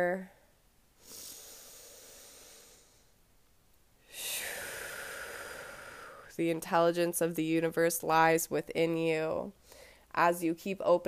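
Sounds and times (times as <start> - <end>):
speech: 0.0 - 0.4, 6.4 - 11.0
slow deep human breath: 1.0 - 3.2, 4.0 - 6.3, 9.6 - 10.1.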